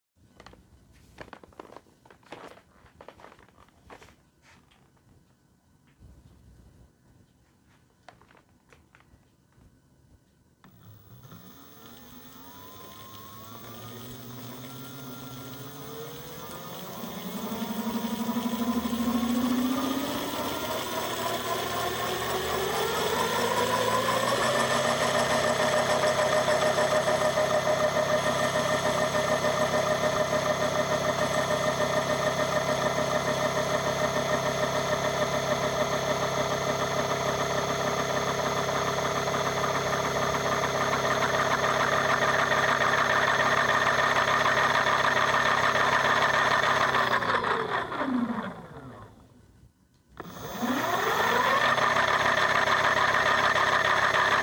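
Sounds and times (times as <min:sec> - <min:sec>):
fat bike motor: 0:10.6 - 0:49.2, 0:50.2 - 0:54.4.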